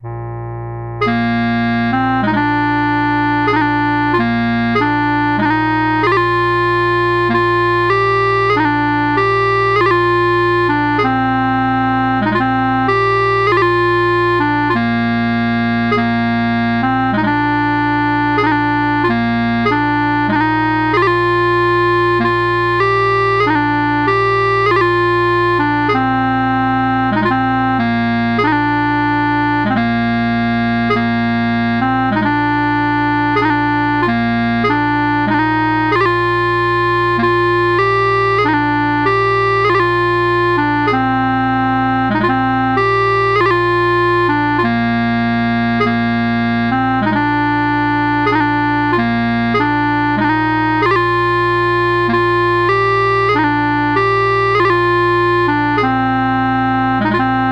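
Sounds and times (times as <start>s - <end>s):
bagpipes playing: 0.0s - 57.5s.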